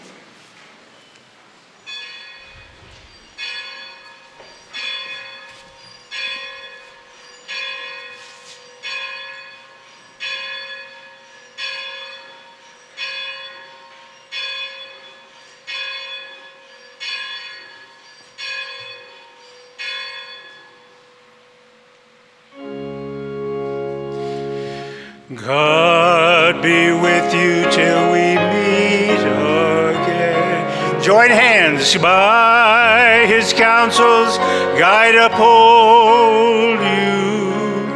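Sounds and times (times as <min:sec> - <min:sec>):
church bells ringing: 0:01.9 - 0:02.7, 0:03.3 - 0:21.4, 0:23.9 - 0:37.9
organ-like chord: 0:22.5 - 0:37.9
speech: 0:31.1 - 0:37.2.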